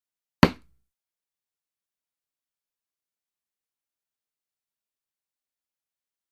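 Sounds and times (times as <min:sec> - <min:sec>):
dart hitting target: 0:00.4 - 0:00.7.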